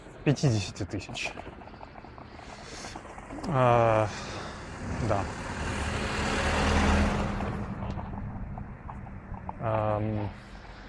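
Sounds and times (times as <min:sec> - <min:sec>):
speech: 0:00.2 - 0:01.7, 0:03.4 - 0:05.4, 0:09.6 - 0:10.4
car driving slowly along a one-way road through a residential courtyard: 0:04.3 - 0:10.8.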